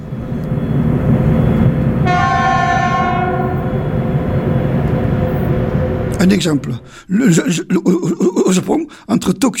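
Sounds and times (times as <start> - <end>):
train rumbling on rails: 0.0 - 7.7
long train horn blast: 2.0 - 4.6
speech: 6.3 - 9.5.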